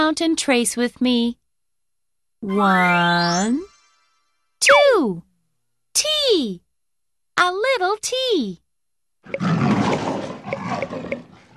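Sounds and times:
speech: 0.1s - 1.4s, 2.4s - 3.7s, 4.6s - 5.3s, 6.0s - 6.6s, 7.4s - 8.6s, 9.3s - 9.7s
tiger roaring: 9.3s - 11.5s.

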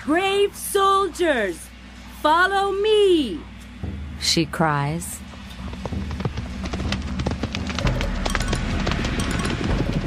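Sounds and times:
speech: 0.0s - 3.5s, 4.2s - 5.3s
galloping hoofbeats of a ridden horse charging in battle: 5.2s - 10.0s.

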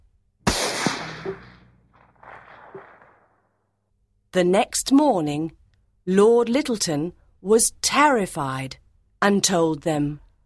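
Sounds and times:
single loud gunshot with long tail: 0.4s - 3.3s
speech: 1.2s - 1.5s, 4.4s - 10.2s.

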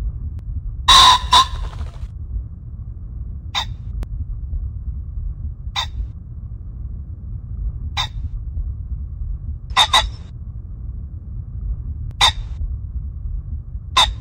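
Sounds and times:
low steady rumble: 0.0s - 14.1s
Common Pheasant giving harsh rasping calls at Baiyangdian: 0.9s - 2.0s, 9.7s - 10.2s, 12.2s - 12.5s.

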